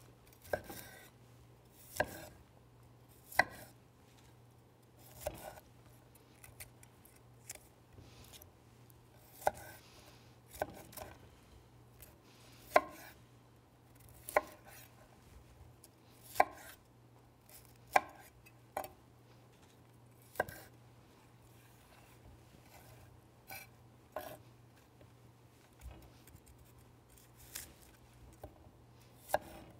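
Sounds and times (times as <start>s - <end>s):
faint steady hum: 0.0s - 29.7s
knife chopping cauliflower into florets on a cutting board: 0.4s - 1.1s, 1.8s - 2.4s, 3.2s - 3.7s, 5.0s - 5.6s, 9.3s - 9.8s, 10.5s - 11.2s, 12.7s - 13.2s, 14.2s - 14.9s, 16.2s - 16.8s, 17.6s - 18.9s, 20.3s - 20.7s, 23.5s - 24.4s, 29.2s - 29.7s.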